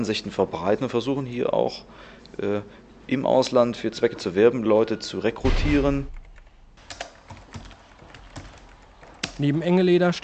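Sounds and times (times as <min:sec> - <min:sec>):
speech: 0:00.0 - 0:06.2, 0:09.4 - 0:10.2
steady hiss of noise: 0:00.0 - 0:07.6
computer clicks while clicking through on-screen menus: 0:06.1 - 0:09.4.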